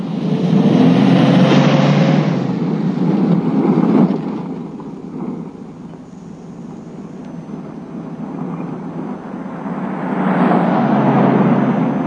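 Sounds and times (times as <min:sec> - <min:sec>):
car engine revving and accelerating: 0:00.0 - 0:05.4, 0:08.0 - 0:12.0.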